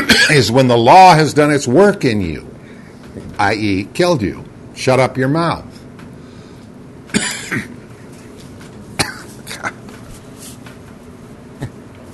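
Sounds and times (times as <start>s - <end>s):
person coughing: 0.0s - 0.4s, 7.1s - 7.8s, 9.0s - 9.9s
low steady room murmur: 0.0s - 12.1s
speech: 0.2s - 2.5s, 3.4s - 5.7s, 7.1s - 7.7s.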